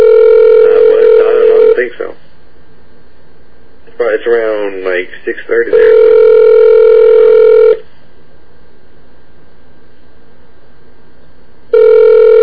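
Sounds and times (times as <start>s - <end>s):
electronic phone ringing tone: 0.0s - 1.8s, 5.7s - 7.8s, 11.7s - 12.4s
speech: 4.3s - 6.5s.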